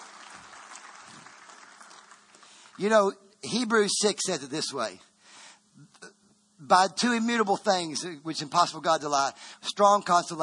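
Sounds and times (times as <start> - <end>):
church congregation clapping during a service: 0.0 - 3.0
speech: 2.8 - 5.1, 6.6 - 10.4.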